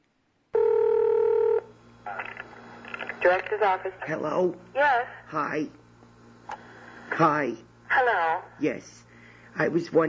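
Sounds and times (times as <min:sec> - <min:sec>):
loud steady telephone tone: 0:00.6 - 0:01.7
speech: 0:03.2 - 0:05.8, 0:07.2 - 0:10.0.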